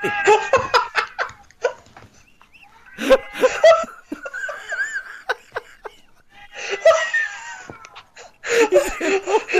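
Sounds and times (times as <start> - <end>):
people laughing: 0.0 - 9.5
cat meowing: 2.6 - 3.5, 6.4 - 8.2.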